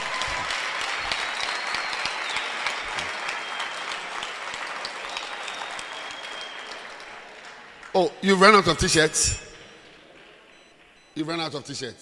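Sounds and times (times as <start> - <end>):
audience applause at a live event: 0.0 - 8.0
speech: 8.0 - 9.5, 11.2 - 12.0.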